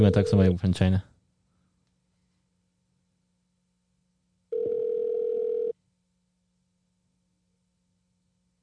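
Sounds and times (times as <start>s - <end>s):
speech: 0.0s - 1.1s
electronic telephone ringback tone: 4.5s - 5.8s.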